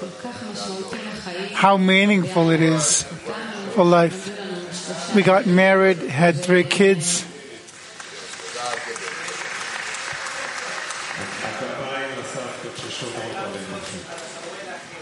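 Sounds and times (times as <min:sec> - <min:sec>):
speech: 0:00.2 - 0:04.3, 0:05.1 - 0:07.3
crowd applauding: 0:07.7 - 0:13.5.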